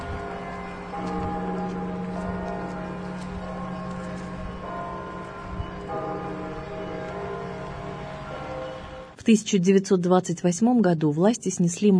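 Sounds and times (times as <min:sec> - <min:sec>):
church bells ringing: 0:00.0 - 0:09.2
faint outdoor street ambience: 0:00.0 - 0:11.9
speech: 0:09.2 - 0:11.9.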